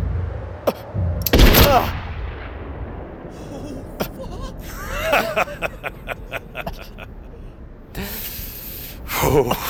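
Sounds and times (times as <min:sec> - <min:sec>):
low noise: 0:00.0 - 0:09.6
gunshots: 0:01.2 - 0:03.2
laughter: 0:03.4 - 0:07.3.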